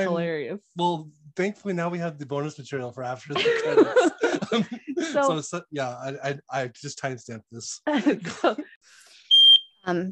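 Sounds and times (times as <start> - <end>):
speech: 0.0 - 9.0, 9.8 - 10.1
laughter: 3.2 - 5.6, 7.9 - 8.8
smoke alarm beep: 9.3 - 9.8.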